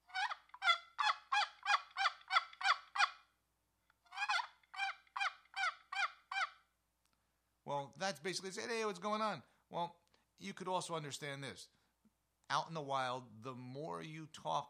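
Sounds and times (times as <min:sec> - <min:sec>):
wooden box call imitating a wild turkey's locator call: 0:00.0 - 0:03.3, 0:04.1 - 0:06.7
speech: 0:07.7 - 0:11.8, 0:12.5 - 0:14.6.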